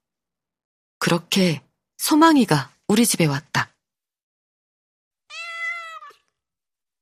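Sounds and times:
speech: 0:01.1 - 0:03.7
small cat meowing: 0:05.3 - 0:06.4.

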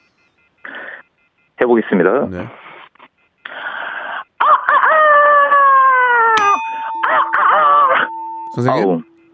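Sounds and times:
speech: 0:01.6 - 0:02.6, 0:08.6 - 0:09.1
person imitating a rooster crowing in a contest act: 0:04.4 - 0:06.4
steady electronic tone: 0:06.4 - 0:09.3.

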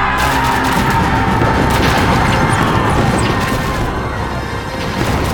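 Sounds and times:
cannon blasts and crashes in a night attack on fortress walls: 0:00.1 - 0:05.2
rapid gunfire-like bursts in a night attack: 0:00.2 - 0:05.2.

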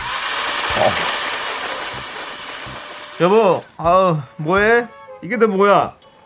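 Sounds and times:
kitchen blender running: 0:00.0 - 0:03.7
speech: 0:00.8 - 0:01.2, 0:03.2 - 0:06.0.

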